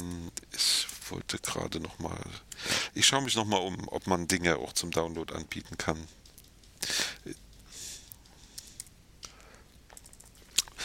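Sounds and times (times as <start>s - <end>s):
speech: 1.1s - 6.2s, 7.2s - 7.4s
sharp computer mouse or key clicks: 6.2s - 10.6s.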